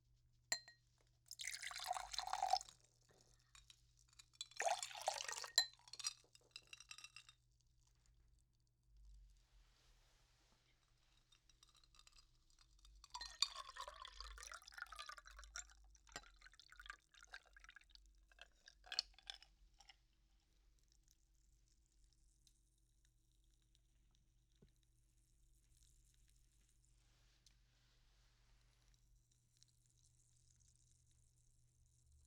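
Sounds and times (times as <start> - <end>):
glass clinking: 0.5 - 0.7, 1.4 - 2.7, 4.4 - 7.3, 13.0 - 15.1
carbonated soft drink fizzing: 1.3 - 2.7, 4.6 - 5.6, 13.1 - 15.6
carbonated soft drink pouring into a glass: 1.3 - 7.4, 9.8 - 21.1.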